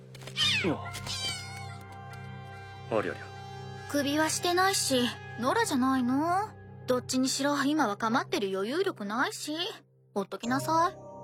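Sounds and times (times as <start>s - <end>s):
cat meowing: 0.4s - 1.8s
speech: 0.6s - 1.0s, 2.9s - 3.3s, 3.9s - 11.2s.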